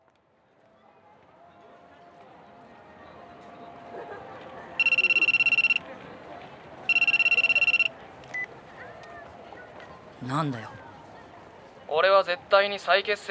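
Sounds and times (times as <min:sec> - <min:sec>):
telephone ringing with trilling electronic tone: 0:04.8 - 0:05.8, 0:06.9 - 0:08.5
speech: 0:10.2 - 0:10.8, 0:11.9 - 0:13.2.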